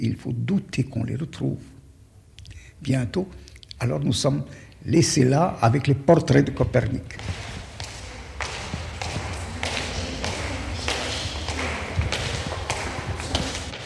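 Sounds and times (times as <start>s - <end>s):
speech: 0.0s - 1.8s, 2.8s - 7.5s
low hum: 0.0s - 13.8s
footsteps on stone tiles in a large room: 7.1s - 13.8s.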